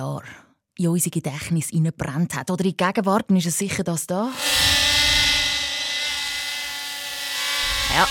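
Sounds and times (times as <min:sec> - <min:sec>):
speech: 0:00.0 - 0:04.7
drone buzzing in flight: 0:04.3 - 0:08.0.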